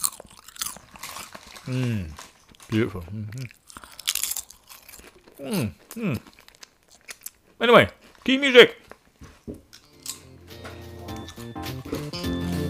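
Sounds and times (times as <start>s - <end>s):
crisps being crunched: 0.0s - 9.0s
speech: 1.7s - 3.6s, 5.4s - 6.3s, 7.6s - 8.8s.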